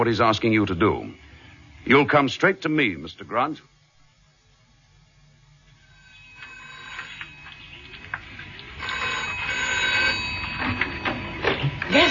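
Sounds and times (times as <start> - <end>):
speech: 0.0 - 1.2, 1.8 - 3.7
hiss and rumble: 0.0 - 12.0
telephone ringing with a steady metallic bell tone: 5.8 - 8.2, 8.8 - 12.0.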